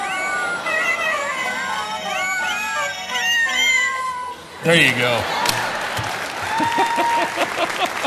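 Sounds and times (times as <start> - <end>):
cats meowing and caterwauling: 0.0 - 4.4
speech: 4.6 - 5.5, 6.6 - 8.0
laughter: 4.9 - 8.0.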